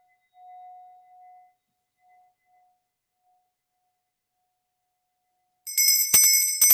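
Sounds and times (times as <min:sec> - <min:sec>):
soft steady ringing tone: 0:05.7 - 0:06.7.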